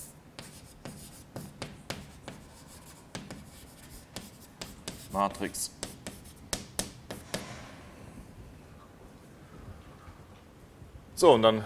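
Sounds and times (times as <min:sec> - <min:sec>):
writing by hand during a mathematics lecture: 0:00.0 - 0:05.2, 0:05.8 - 0:07.2
speech: 0:05.2 - 0:05.8, 0:11.2 - 0:11.6.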